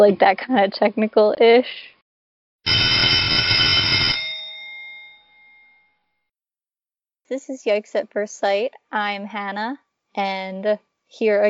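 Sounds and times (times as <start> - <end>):
speech: 0.0 - 1.9, 7.3 - 11.4
loud electric school bell ringing with a harsh metallic clatter: 2.7 - 6.0.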